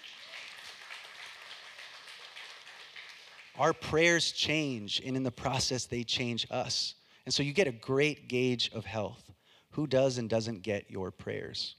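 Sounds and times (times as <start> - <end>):
audience applauding: 0.0 - 3.7
speech: 3.6 - 11.7.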